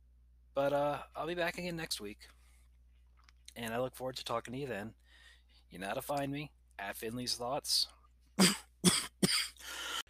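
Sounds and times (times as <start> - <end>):
speech: 0.6 - 2.4, 3.6 - 5.0, 5.7 - 8.7
person letting out a long raspy breath: 5.0 - 5.6, 9.6 - 10.0
person coughing: 8.4 - 9.7.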